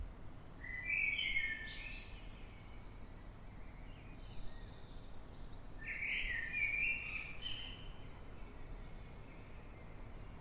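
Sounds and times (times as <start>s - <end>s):
Eurasian blackbird singing at night in London: 0.6s - 10.0s.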